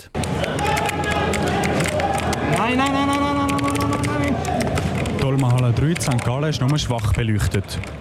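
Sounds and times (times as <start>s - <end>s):
indistinct voices: 0.0s - 7.8s
crowd noise in a busy hall: 0.0s - 7.9s
many keyboards clicking and tapping at a gaming event: 0.2s - 7.9s
people shouting at gaming event: 0.3s - 5.2s
speech: 5.3s - 7.9s.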